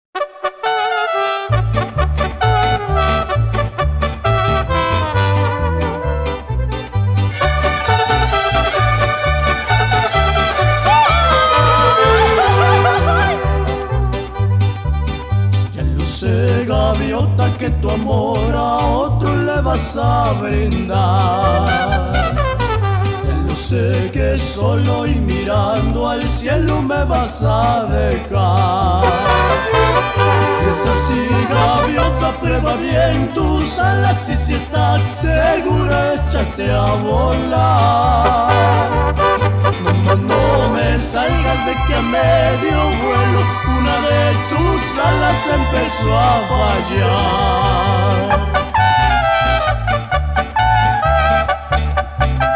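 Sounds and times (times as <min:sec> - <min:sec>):
mariachi music in Germany: 0:00.0 - 0:52.5
laughter: 0:10.8 - 0:13.7.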